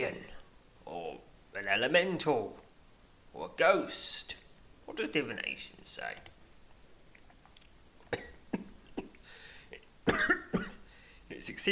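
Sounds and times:
speech: 1.6s - 2.6s, 3.4s - 6.3s, 11.4s - 11.7s
person coughing: 8.1s - 9.3s, 10.0s - 10.9s.

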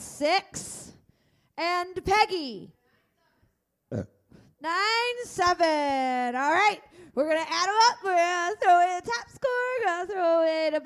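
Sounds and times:
speech: 0.2s - 0.8s, 1.6s - 2.8s, 3.9s - 10.8s
short low burp: 3.9s - 4.2s.

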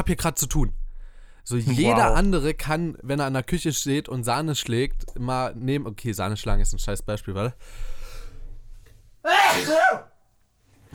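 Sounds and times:
speech: 0.0s - 0.8s, 1.4s - 8.0s, 9.2s - 10.1s
loud sneeze: 9.3s - 10.2s.

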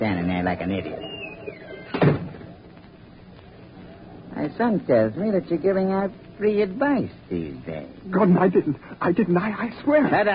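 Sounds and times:
speech: 0.0s - 2.2s, 4.4s - 10.3s
door creaking: 1.0s - 2.6s
door shutting with a thud: 1.9s - 2.5s.

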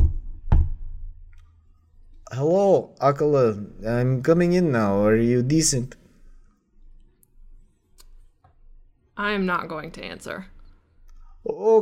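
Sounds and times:
heavy booming knock on a door: 0.0s - 1.1s
dull thud: 0.0s - 1.2s
speech: 2.3s - 6.0s, 9.2s - 10.6s, 11.5s - 11.8s.

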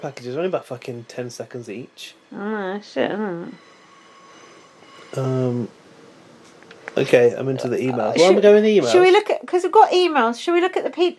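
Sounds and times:
speech: 0.0s - 3.8s, 5.1s - 5.8s, 7.0s - 11.1s
train passing by in London: 0.0s - 11.0s.

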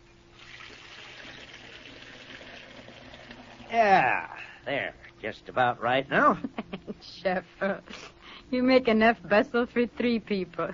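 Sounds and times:
water running from a tap into a tea kettle: 0.4s - 3.7s
speech: 3.7s - 10.7s.

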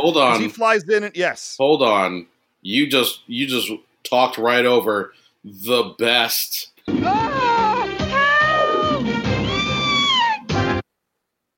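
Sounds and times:
speech: 0.0s - 7.3s
cartoon cat yowling: 7.0s - 10.6s.

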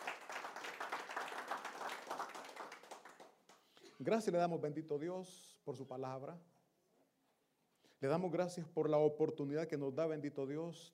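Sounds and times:
audience applauding: 0.0s - 3.3s
speech: 4.0s - 6.5s, 8.0s - 10.9s.

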